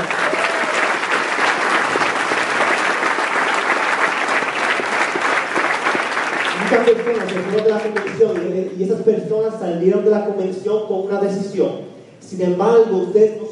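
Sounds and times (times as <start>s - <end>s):
audience applause: 0.0s - 8.6s
speech: 6.7s - 13.5s.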